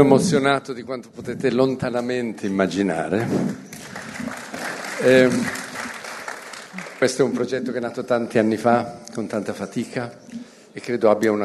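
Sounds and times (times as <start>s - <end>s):
speech: 0.0s - 4.0s, 5.0s - 5.6s, 7.0s - 11.4s
crowd applauding at a press conference: 3.5s - 7.8s.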